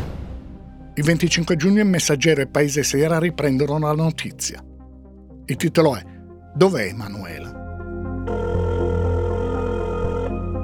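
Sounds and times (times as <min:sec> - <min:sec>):
speech: 0:01.0 - 0:04.7, 0:05.5 - 0:07.6
old telephone bell ringing: 0:08.3 - 0:10.5.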